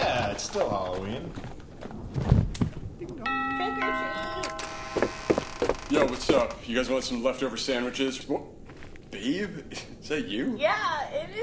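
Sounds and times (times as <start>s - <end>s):
speech: 0.4s - 2.3s, 5.9s - 8.5s, 9.1s - 11.4s
electronic doorbell chiming a short melodic tune: 3.3s - 5.3s.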